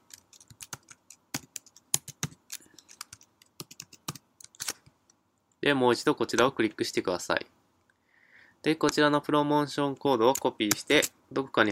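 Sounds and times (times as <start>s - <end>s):
typing on a computer keyboard: 0.0s - 4.7s
speech: 5.6s - 7.6s, 8.6s - 11.7s.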